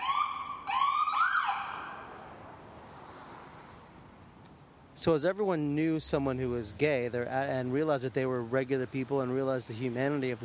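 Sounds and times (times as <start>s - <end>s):
ambulance siren wailing: 0.0s - 2.2s
speech: 5.0s - 10.4s.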